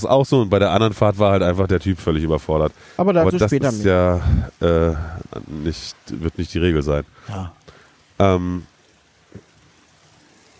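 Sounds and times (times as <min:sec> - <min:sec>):
speech: 0:00.0 - 0:08.7
steady rain falling outside: 0:00.0 - 0:10.5.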